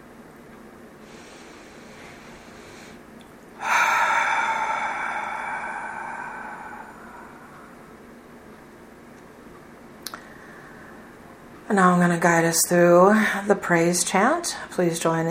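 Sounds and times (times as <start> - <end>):
long slow deep breath at the start of a guided meditation: 1.0 - 3.0, 3.6 - 8.0, 10.2 - 11.1
speech: 11.7 - 15.2.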